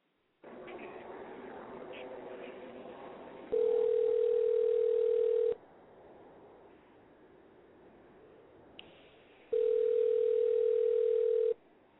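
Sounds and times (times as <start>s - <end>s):
phone line hiss: 3.5s - 5.6s, 9.5s - 11.6s
telephone dial-line noise: 3.5s - 5.6s, 9.5s - 11.6s.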